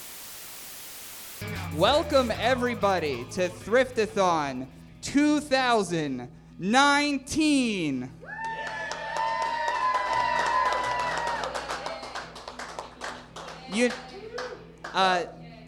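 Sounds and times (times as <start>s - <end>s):
musical tone: 1.4s - 5.2s
speech: 1.5s - 8.2s, 13.7s - 14.0s, 14.9s - 15.4s
rising vocal whoops: 8.2s - 12.2s
one person clapping hands: 8.4s - 15.0s.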